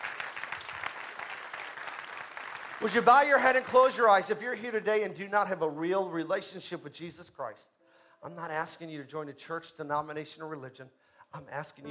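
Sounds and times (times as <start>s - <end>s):
church congregation applauding: 0.0s - 4.2s
speech: 2.8s - 11.8s.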